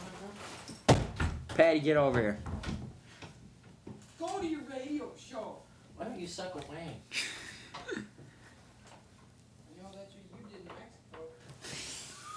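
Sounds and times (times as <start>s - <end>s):
door being broken down with crashing thuds and bangs: 0.8s - 1.5s
speech: 1.6s - 2.5s, 4.2s - 8.1s.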